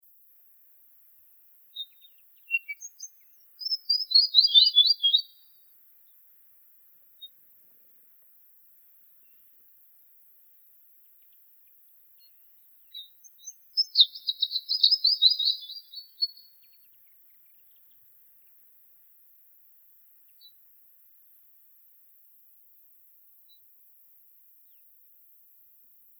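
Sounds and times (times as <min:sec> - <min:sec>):
rufous-fronted fantail calling: 0:01.8 - 0:05.4, 0:13.4 - 0:16.5.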